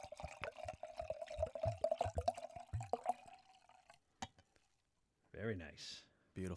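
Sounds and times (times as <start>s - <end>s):
drink poured into a glass in a tall pour: 0.0s - 4.4s
speech: 5.4s - 6.5s.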